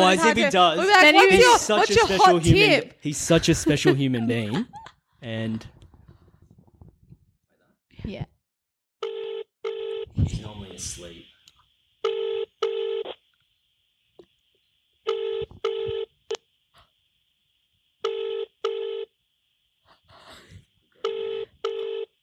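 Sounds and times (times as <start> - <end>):
speech: 0.0 - 5.7, 8.0 - 8.3, 10.2 - 11.2
laughter: 3.2 - 5.6
double-burst telephone ring tone ringing through toward voicemail: 9.0 - 10.1, 12.0 - 13.0, 15.1 - 16.1, 18.0 - 19.1, 21.0 - 22.1.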